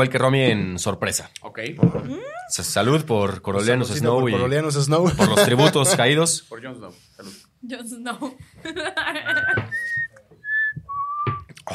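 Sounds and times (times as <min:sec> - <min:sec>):
speech: 0:00.0 - 0:10.1
people chattering: 0:02.0 - 0:02.6, 0:05.2 - 0:06.2
people laughing: 0:05.0 - 0:06.2, 0:08.6 - 0:09.9
person whistling a tune: 0:09.3 - 0:11.5.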